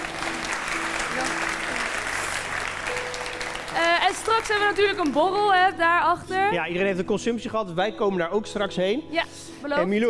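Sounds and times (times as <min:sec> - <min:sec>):
audience applause: 0:00.0 - 0:05.7
speech: 0:04.1 - 0:10.0.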